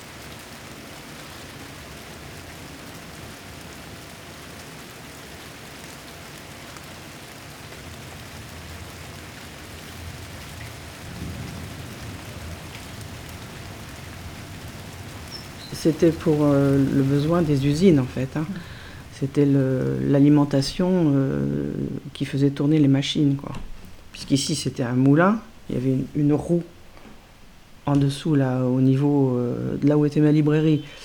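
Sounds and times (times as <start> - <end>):
light rain pattering: 0.0 - 31.0
heavier deeper rumble: 11.1 - 22.2
speech: 15.8 - 26.8, 27.9 - 31.0.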